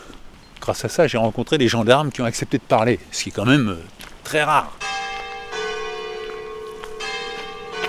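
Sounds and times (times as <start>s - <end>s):
speech: 0.7s - 4.8s
church bells ringing in a continuous peal: 4.7s - 7.8s.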